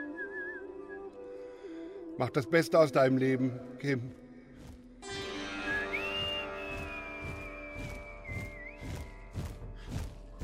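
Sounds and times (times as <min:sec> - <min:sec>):
man whistling a short bright tune while walking toward a tunnel exit: 0:00.0 - 0:01.0, 0:05.6 - 0:09.5
speech: 0:02.2 - 0:04.2.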